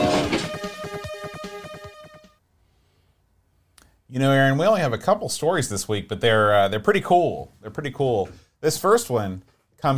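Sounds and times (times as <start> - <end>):
train whistle tone sound effect: 0.0 - 1.2
speech: 4.1 - 9.9.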